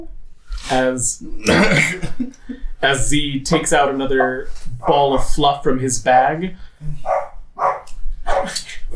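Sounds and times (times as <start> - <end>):
speech: 0.0 - 7.1
dog barking: 7.0 - 8.6.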